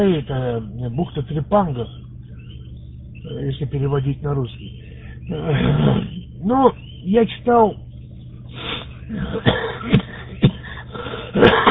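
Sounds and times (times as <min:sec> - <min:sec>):
speech: 0:00.0 - 0:02.0, 0:03.2 - 0:07.8, 0:08.5 - 0:10.0
low steady hum: 0:00.0 - 0:11.7
smoker's rough chesty morning cough: 0:09.1 - 0:11.7.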